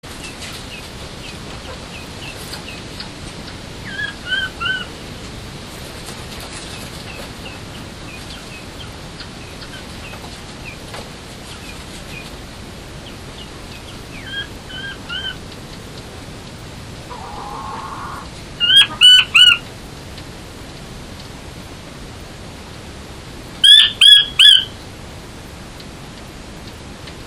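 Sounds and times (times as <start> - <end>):
Chinese quail calling: 1.2 - 5.0, 13.8 - 15.4, 17.1 - 19.7, 23.6 - 24.8.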